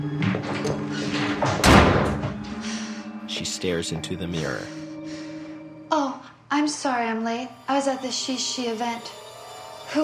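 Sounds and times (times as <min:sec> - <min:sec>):
bathroom door slamming shut: 0:00.2 - 0:02.6
speech: 0:03.4 - 0:04.8, 0:06.7 - 0:09.2.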